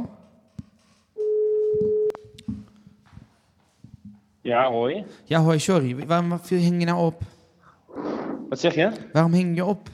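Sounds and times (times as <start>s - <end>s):
phone call tone after dialing a contact: 1.2s - 2.2s
speech: 4.5s - 7.3s, 8.5s - 9.9s.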